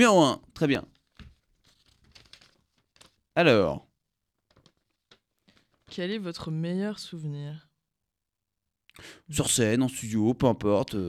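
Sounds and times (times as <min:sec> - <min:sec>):
speech: 0:00.0 - 0:00.9, 0:03.4 - 0:03.9, 0:05.9 - 0:07.7, 0:09.0 - 0:11.0
small paper slip being unfolded, crinkling and rustling: 0:00.9 - 0:03.4, 0:04.4 - 0:06.0.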